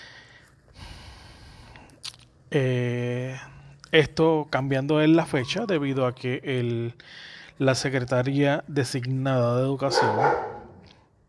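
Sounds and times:
speech: 2.5 - 10.6
single sharp dog bark: 9.8 - 10.8.

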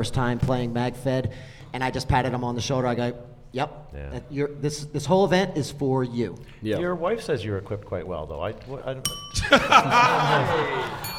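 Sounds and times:
speech: 0.0 - 11.1
single bright bell ding at a live event: 9.1 - 11.1
audience chuckling and laughing at a live event: 9.4 - 11.1.

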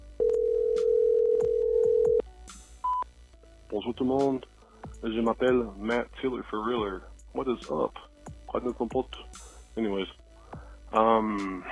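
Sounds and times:
steady telephone tone at start of voicemail playback: 0.2 - 2.2
speech: 3.9 - 10.2, 10.9 - 11.6.

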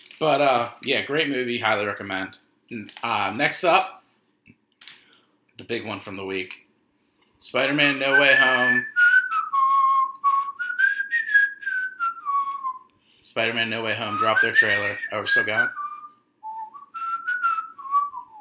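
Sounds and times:
speech: 0.2 - 4.0, 5.6 - 6.6, 7.4 - 9.0, 13.4 - 15.8
person whistling a tune: 8.0 - 12.9, 14.1 - 18.3.

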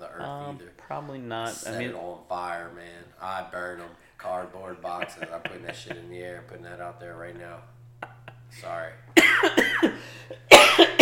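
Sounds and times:
faint steady hum: 0.0 - 11.0
speech: 0.5 - 7.8, 8.5 - 11.0
laughter: 4.6 - 6.7, 8.0 - 8.8
man coughing: 9.2 - 11.0.

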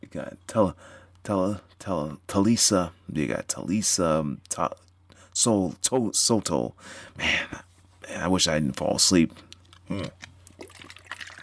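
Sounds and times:
speech: 0.1 - 10.3
small mouth noises: 9.4 - 10.7
person sipping water: 9.4 - 11.4.

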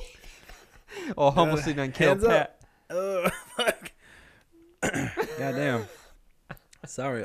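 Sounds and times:
speech: 1.1 - 3.4, 6.9 - 7.2
person coughing: 2.9 - 4.0, 4.8 - 6.1
long gravelly throat clearing: 4.8 - 5.8.

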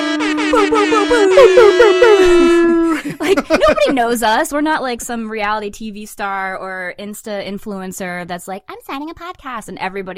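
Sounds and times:
air horn sound effect blasts: 0.0 - 3.0
laughter: 0.5 - 5.2
speech: 0.5 - 10.1.

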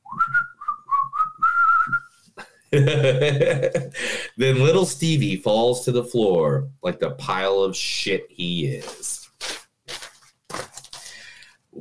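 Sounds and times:
person whistling a short bouncy tune: 0.0 - 2.1
speech: 2.7 - 9.2
laughter: 2.8 - 4.4.

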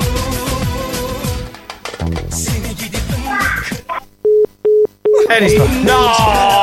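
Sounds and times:
music: 0.0 - 3.8, 5.4 - 6.6
speech: 5.3 - 6.6.

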